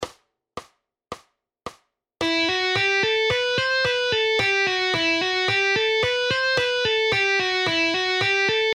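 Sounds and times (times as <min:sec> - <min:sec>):
guitar speed exercises: 0:02.2 - 0:08.7.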